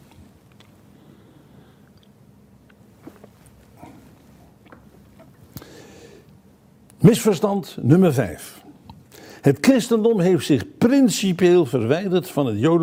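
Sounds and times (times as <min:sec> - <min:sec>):
person quietly sipping water: 0:01.7 - 0:06.4
soft slurps and swallows with small wet clicks: 0:01.8 - 0:05.6
speech: 0:07.0 - 0:08.6, 0:09.4 - 0:12.8.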